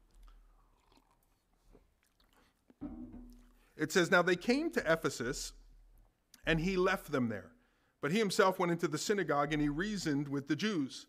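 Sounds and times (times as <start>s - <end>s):
swallowing: 0.0s - 3.6s
person sipping a drink: 0.0s - 3.7s
loud low thud: 2.8s - 3.5s
speech: 3.8s - 5.6s, 6.4s - 11.0s.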